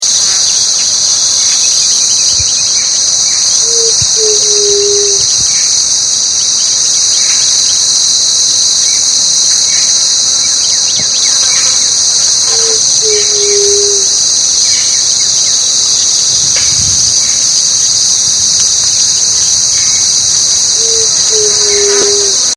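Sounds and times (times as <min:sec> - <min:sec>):
white-tipped dove song: 0:00.0 - 0:22.5.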